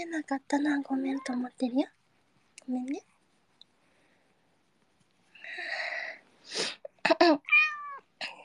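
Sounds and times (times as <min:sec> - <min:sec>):
speech: 0:00.1 - 0:02.0, 0:02.7 - 0:03.1, 0:06.5 - 0:07.6
cat chirping: 0:07.4 - 0:08.1
cat meowing: 0:07.5 - 0:08.1.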